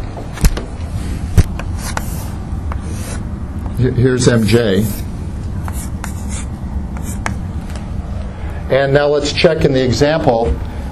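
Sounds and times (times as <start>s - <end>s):
steady low hum: 0.0s - 10.8s
marker drawing on a board: 1.7s - 3.2s, 4.8s - 7.4s
speech: 3.8s - 5.1s, 8.7s - 10.7s.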